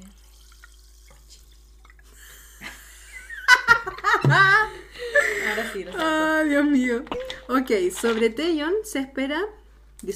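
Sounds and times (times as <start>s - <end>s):
sparkling water pouring into a glass: 0.0s - 3.4s
laughter: 2.4s - 6.2s
speech: 5.6s - 10.1s.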